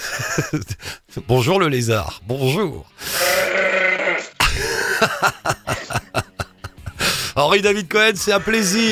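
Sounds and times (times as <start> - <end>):
laughter: 0.0 - 0.8, 4.4 - 7.0
speech: 0.4 - 3.6, 5.0 - 6.0, 7.4 - 8.9
goats bleating: 3.1 - 4.4.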